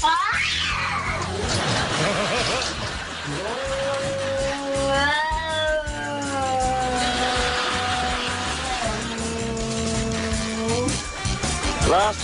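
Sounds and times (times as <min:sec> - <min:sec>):
black male cat yowling at its reflection in a mirror: 0:00.0 - 0:01.3, 0:03.6 - 0:11.8
laughter: 0:01.4 - 0:04.6, 0:06.9 - 0:10.1.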